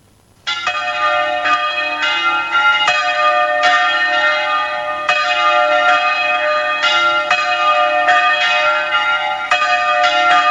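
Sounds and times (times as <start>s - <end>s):
cathedral bells ringing the morning call to mass in Córdoba: 0.4s - 10.4s.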